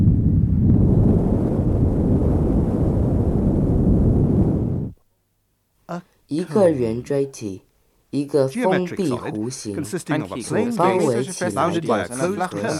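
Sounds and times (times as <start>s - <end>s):
cone buffeted by wind roaring: 0.0s - 5.0s
speech: 5.9s - 12.7s.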